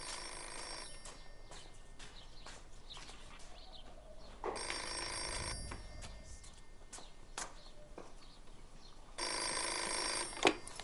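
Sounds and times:
landline telephone bell ringing: 0.0 - 1.6, 4.6 - 6.6, 9.2 - 10.8.

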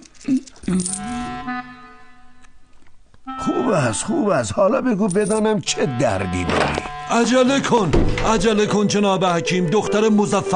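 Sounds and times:
coins clinking together: 0.0 - 1.3, 5.0 - 5.5
speech: 0.2 - 1.8, 3.7 - 10.5.

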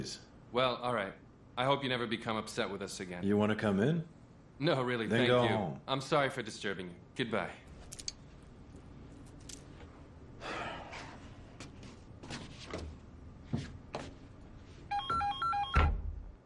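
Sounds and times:
speech: 0.0 - 7.6
telephone with warbling electronic ring: 14.9 - 15.9.

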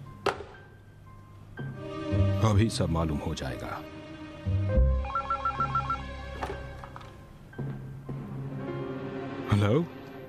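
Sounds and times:
speech: 2.4 - 4.8, 9.6 - 10.0
telephone ringtone trilling on an outgoing call: 5.0 - 6.1.

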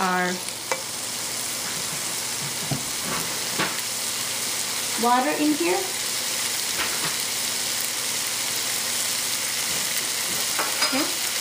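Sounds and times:
food sizzling in a frying pan: 0.0 - 11.4
speech: 5.0 - 6.0.

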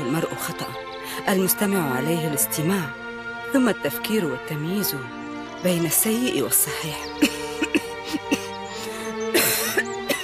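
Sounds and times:
steady tonal background: 0.0 - 10.2
speech: 0.2 - 7.4
woman with a chest complaint coughing: 7.2 - 8.5, 9.3 - 10.2.

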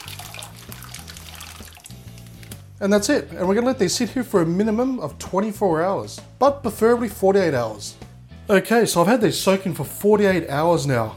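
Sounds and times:
almonds poured into a bowl of filtered water: 0.0 - 2.3
speech: 2.8 - 11.1.

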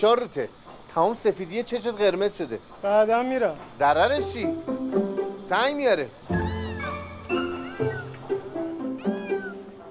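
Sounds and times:
speech: 0.0 - 6.4
cat meowing: 6.3 - 9.8.

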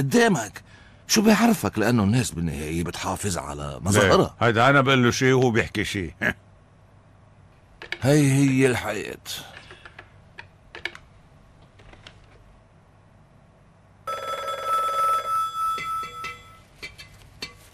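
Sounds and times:
speech: 0.0 - 6.4, 7.8 - 9.5
home telephone ringing: 14.1 - 16.6.

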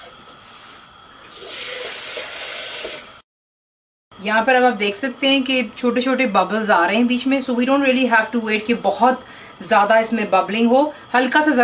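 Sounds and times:
water pouring into a cooking pot for gravy: 1.3 - 3.2
speech: 4.2 - 11.6.

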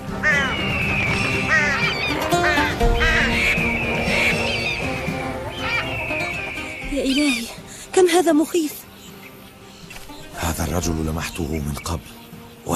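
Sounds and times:
flock of geese honking: 0.0 - 7.7
flock of ducks quacking: 0.2 - 7.8
speech: 8.0 - 8.9, 10.8 - 12.7.

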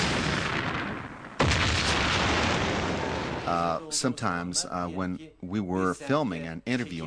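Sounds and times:
bomb blast: 0.0 - 3.8
roar: 0.0 - 4.3
speech: 3.5 - 7.0.

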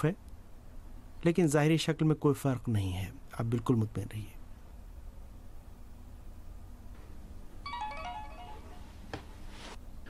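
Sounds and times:
speech: 0.0 - 0.2, 1.2 - 4.4
steady low noise: 0.0 - 10.0
mobile phone ringtone: 7.6 - 9.1.

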